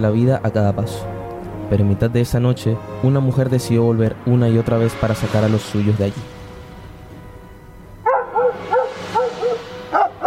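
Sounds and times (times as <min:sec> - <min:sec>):
speech: 0:00.0 - 0:06.4
dogs barking: 0:08.0 - 0:10.2.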